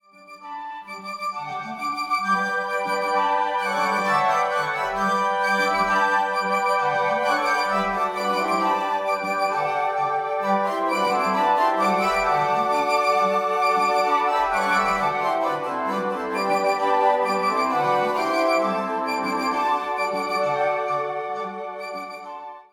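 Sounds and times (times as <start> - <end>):
flute ensemble playing a bolero: 0.4 - 22.7.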